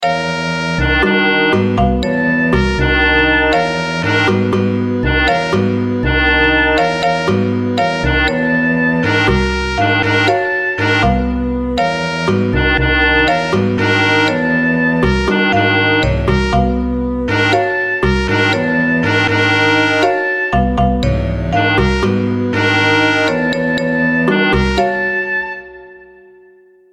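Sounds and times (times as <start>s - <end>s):
chromatic feedback: 0.0s - 26.9s.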